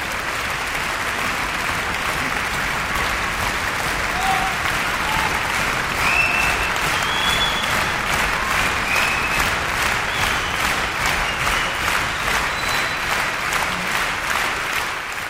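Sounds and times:
audience applause: 0.0s - 15.2s
faint whoops: 4.1s - 7.7s.

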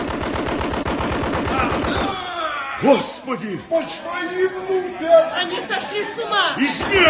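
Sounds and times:
rapid automatic gunfire: 0.0s - 2.2s
laughter: 1.6s - 7.0s
speech: 2.8s - 7.0s.

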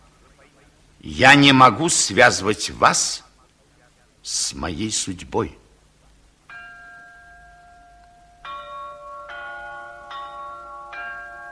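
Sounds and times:
speech: 1.0s - 3.3s, 4.2s - 5.6s
church bells tolling: 6.5s - 11.5s.

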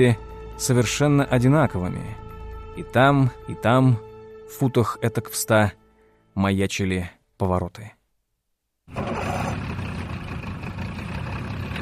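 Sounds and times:
speech: 0.0s - 5.8s, 6.4s - 8.0s
motorboat engine chugging as the boat pulls away from a harbour: 9.0s - 11.7s.

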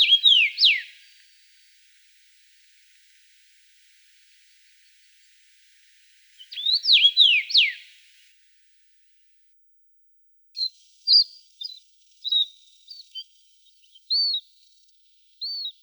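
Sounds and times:
common rosefinch Carpodacus erythrinus whistled song phrase in Russia: 0.0s - 1.3s, 6.1s - 8.1s, 10.6s - 15.8s.

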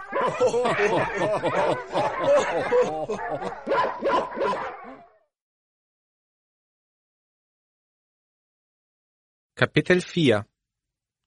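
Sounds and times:
men laughing: 0.0s - 5.0s
dogs barking: 0.0s - 5.2s
speech: 0.3s - 4.8s, 9.6s - 10.5s.

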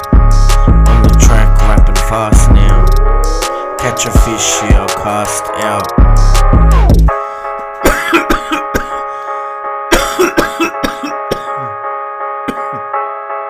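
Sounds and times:
steady sustained musical tone: 0.0s - 8.3s
speech: 4.0s - 6.8s
heavy coughing fit: 7.8s - 9.2s, 9.9s - 11.8s, 12.5s - 13.0s.

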